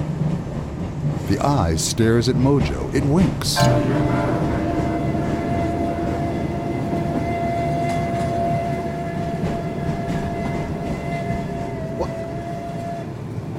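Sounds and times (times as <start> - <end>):
train rolling on rails: 0.0 - 13.5
speech: 1.3 - 4.5
thin high metallic whine of train: 3.6 - 12.0.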